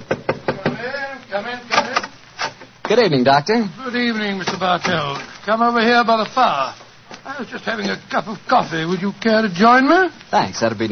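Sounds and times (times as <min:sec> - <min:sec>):
firm knocks on a wooden study door: 0:00.0 - 0:00.8
man's voice answering from inside: 0:00.6 - 0:02.2, 0:02.8 - 0:10.9
speech: 0:01.3 - 0:01.7, 0:02.9 - 0:06.8, 0:07.4 - 0:10.9.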